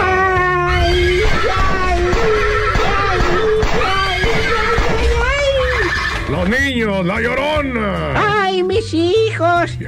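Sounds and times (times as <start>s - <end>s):
dense continuous backdrop of other sound: 0.0s - 9.8s
horse whinnying with shrill wavering cries: 1.8s - 6.4s
speech: 6.5s - 9.8s.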